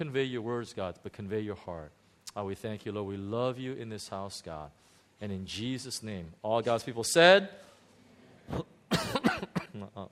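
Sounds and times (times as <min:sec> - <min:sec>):
speech: 0:00.0 - 0:07.7, 0:08.5 - 0:08.7
person with a persistent cough after the flu coughing: 0:08.5 - 0:10.0.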